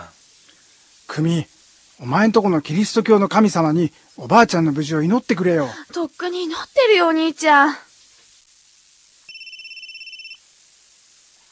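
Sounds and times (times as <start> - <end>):
speech: 1.2 - 7.9
mobile phone ringing with electronic trill: 9.3 - 10.4.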